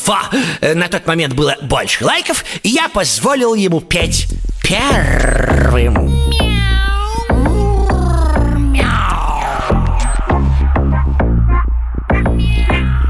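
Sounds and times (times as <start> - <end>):
speech: 0.1 - 6.4
thumping rhythmic beat: 4.0 - 13.0
cat meowing with sliding pitch: 5.2 - 9.4.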